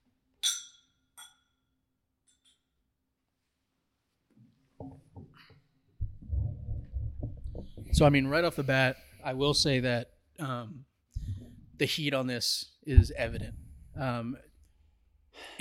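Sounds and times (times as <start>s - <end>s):
bourbon glasses clinking in a toast: 0.4s - 1.7s
low rustling: 6.0s - 10.0s, 11.2s - 11.9s, 12.9s - 14.7s
speech: 7.9s - 10.9s, 11.8s - 14.5s.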